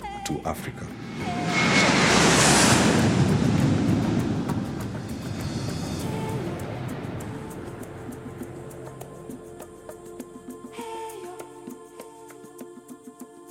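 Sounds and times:
speech: 0.3 - 1.6
airplane roaring past: 0.8 - 9.6.

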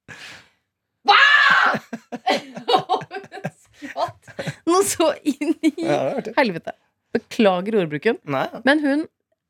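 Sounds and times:
person screaming: 1.1 - 2.0
laughter: 1.7 - 4.7
speech: 4.8 - 9.2.

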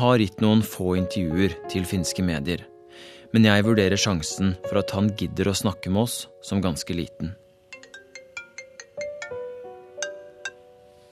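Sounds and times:
speech: 0.0 - 7.4
phone ringtone for an incoming call from a lawyer: 7.7 - 10.6.

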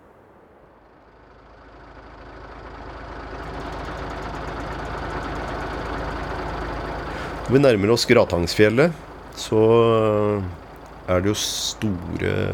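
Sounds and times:
military truck engines idling in traffic queue: 0.1 - 12.5
speech: 7.5 - 12.5.

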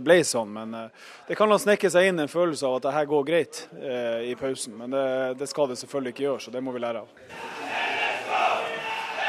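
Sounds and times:
speech: 0.0 - 7.8
group of men shouting and cheering in a dressing room: 7.3 - 9.2.

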